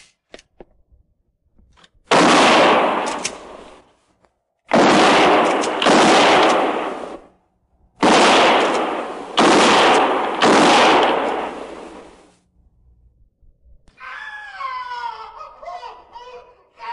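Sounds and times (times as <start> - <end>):
rifle gunfire aimed between trees: 2.1 - 3.8, 4.7 - 7.3, 8.0 - 12.2.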